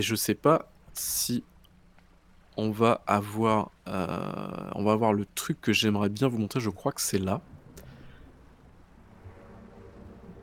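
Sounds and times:
speech: 0:00.0 - 0:01.5, 0:02.6 - 0:07.5
constant background noise: 0:00.0 - 0:10.4
low steady engine drone from a boat approaching at night: 0:07.3 - 0:10.4.

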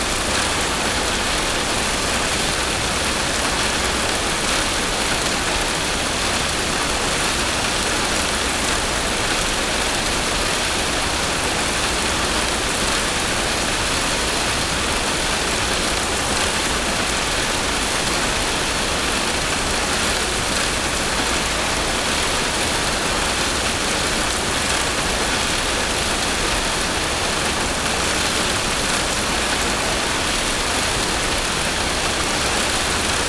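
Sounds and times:
soft spring rain on a camper on a mountain road: 0:00.0 - 0:33.2.

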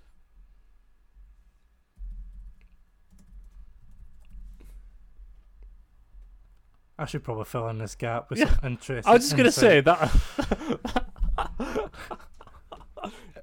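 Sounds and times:
computer keyboard typing during a web search: 0:02.1 - 0:04.5
speech: 0:07.0 - 0:11.1
laughter: 0:08.4 - 0:13.4.

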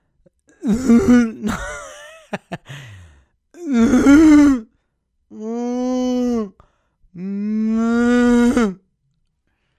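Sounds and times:
speech: 0:00.2 - 0:01.7
human voice imitating cows mooing: 0:00.6 - 0:01.4, 0:03.6 - 0:04.6, 0:05.4 - 0:06.6, 0:07.2 - 0:08.8.

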